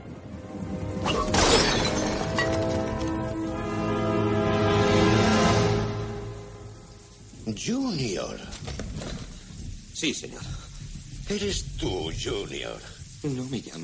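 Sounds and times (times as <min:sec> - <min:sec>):
sustained music in a film scene: 0:00.0 - 0:08.2
late-14th-century Ming dynasty vase shattering over a man's head: 0:01.0 - 0:03.4
speech: 0:07.6 - 0:09.1, 0:10.0 - 0:10.7, 0:11.3 - 0:13.8.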